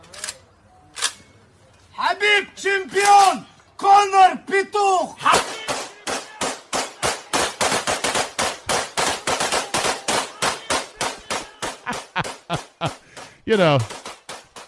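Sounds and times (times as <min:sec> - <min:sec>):
speech: 0:02.4 - 0:05.5, 0:12.8 - 0:14.0
AK-47 rifle shots fired into the air at night in Russia by celebrating fans: 0:05.3 - 0:12.4
laughter: 0:09.2 - 0:13.8.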